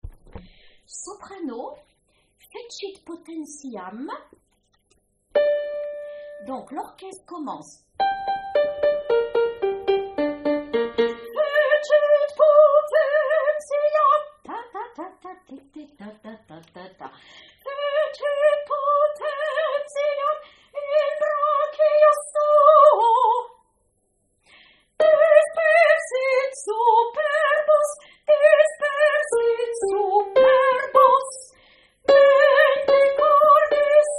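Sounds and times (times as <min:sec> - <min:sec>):
soprano singing a canticle: 0:09.1 - 0:16.9, 0:17.6 - 0:23.5, 0:25.0 - 0:34.1.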